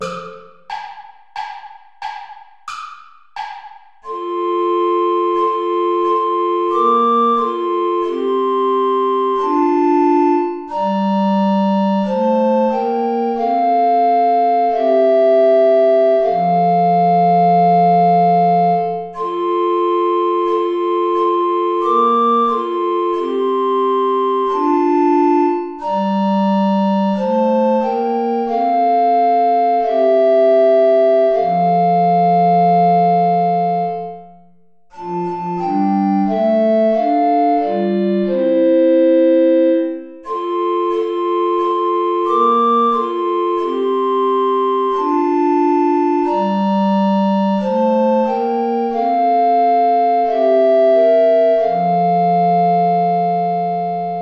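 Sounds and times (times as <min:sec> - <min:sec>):
play-along backing music without alto recorder: 0:00.0 - 0:54.1.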